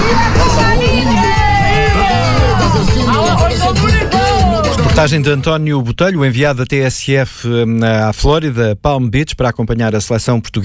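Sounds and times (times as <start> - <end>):
protest crowd shouting in the street: 0.0 - 5.1
speech: 5.0 - 10.6.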